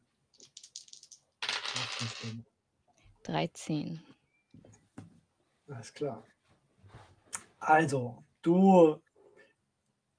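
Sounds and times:
dice rattling: 0.4 - 2.4
speech: 2.0 - 2.5, 3.2 - 4.8, 5.7 - 6.4, 7.6 - 9.1.

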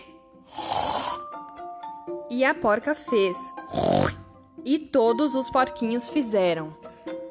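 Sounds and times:
person imitating a snore: 0.5 - 1.3, 3.7 - 4.3
speech: 2.3 - 4.0, 4.7 - 6.9.

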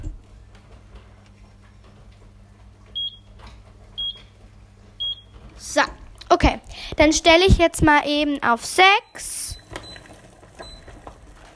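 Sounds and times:
low hum: 0.0 - 11.5
kitchen timer beeping: 3.0 - 3.3, 4.0 - 4.3, 5.0 - 5.3, 8.9 - 11.0
speech: 5.6 - 9.3.

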